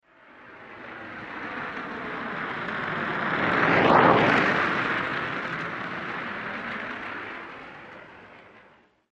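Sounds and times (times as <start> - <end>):
blow torch passing by at medium speed with air ripping: 3.1 - 5.8.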